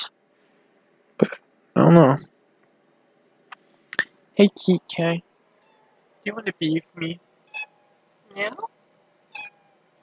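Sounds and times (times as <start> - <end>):
speech: 1.2 - 2.3, 4.4 - 5.3, 6.2 - 7.7, 8.4 - 8.7
cat meowing: 5.6 - 6.0, 7.4 - 8.0, 9.3 - 9.8.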